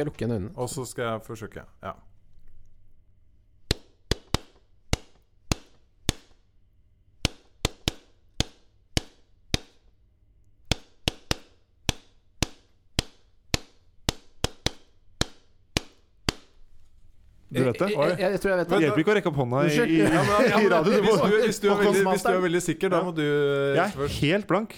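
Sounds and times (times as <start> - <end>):
speech: 0.0 - 2.1, 17.5 - 24.7
sharp knuckle-like taps on a book beating out a song rhythm: 3.7 - 6.4, 7.2 - 9.8, 10.7 - 16.5
laughter: 17.5 - 24.4.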